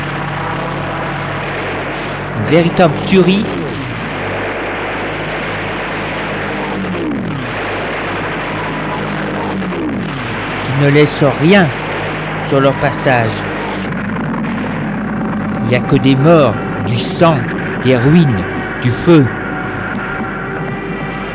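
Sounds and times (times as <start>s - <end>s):
aircraft engines roaring overhead: 0.0s - 21.3s
speech: 2.4s - 3.6s, 10.8s - 11.8s, 12.5s - 13.5s, 15.7s - 19.4s.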